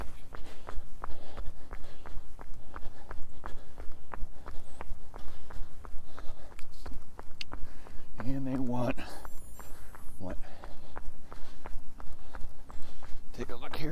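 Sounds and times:
footsteps of person running: 0:00.0 - 0:13.9.

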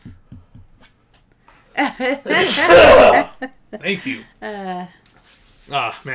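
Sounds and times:
speech: 0:01.8 - 0:05.0, 0:05.7 - 0:06.1
person sneezing: 0:02.3 - 0:03.4.

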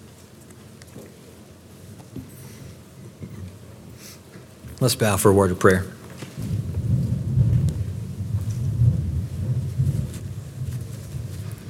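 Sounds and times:
speech: 0:04.8 - 0:06.0
deep rolling thunder: 0:06.3 - 0:11.6.

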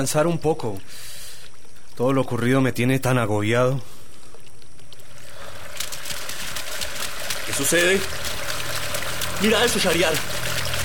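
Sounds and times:
speech: 0:00.0 - 0:01.2, 0:02.0 - 0:04.0, 0:07.6 - 0:08.4, 0:09.4 - 0:10.3
sea water churning and splashing: 0:05.0 - 0:10.8.

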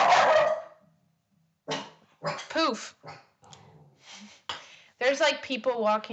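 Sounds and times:
dog barking: 0:00.0 - 0:00.8, 0:01.7 - 0:03.4
speech: 0:02.3 - 0:03.2, 0:05.1 - 0:06.1.

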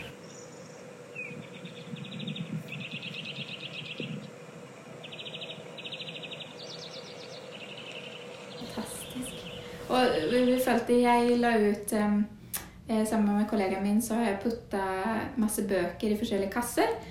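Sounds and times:
birdsong outdoors on a sunny day: 0:00.0 - 0:04.4, 0:05.0 - 0:10.7
steady low hum: 0:00.0 - 0:17.0
speech: 0:09.9 - 0:17.0.

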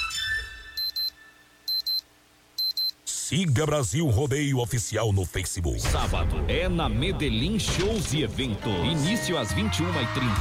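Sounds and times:
electronic alarm clock sound effect beeping as a radio time check: 0:00.8 - 0:03.0
speech: 0:03.3 - 0:10.3.

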